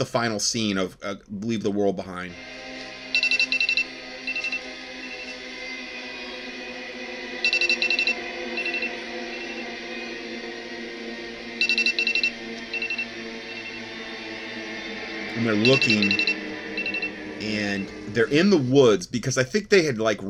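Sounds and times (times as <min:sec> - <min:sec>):
speech: 0:00.0 - 0:02.7, 0:15.4 - 0:16.3, 0:17.4 - 0:20.2
steady low hum: 0:02.1 - 0:20.0
electronic alert tones from several phones: 0:03.2 - 0:04.6, 0:07.4 - 0:09.5, 0:11.6 - 0:13.7, 0:15.6 - 0:17.1.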